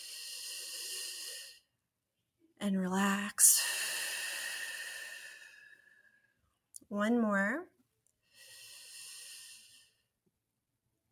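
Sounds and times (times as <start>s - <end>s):
deep breath drawn in: 0.0s - 1.7s, 3.6s - 6.3s, 8.3s - 10.0s
speech: 2.6s - 3.6s, 6.9s - 7.7s.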